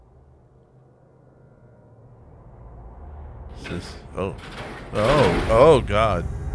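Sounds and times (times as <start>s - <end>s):
door creaking open with groaning squeaks: 3.6s - 6.2s
speech: 3.7s - 6.4s.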